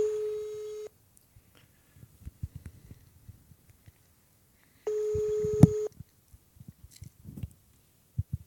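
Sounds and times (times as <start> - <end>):
outgoing electronic telephone call tones while dialing: 0.0 - 0.9, 4.9 - 5.9.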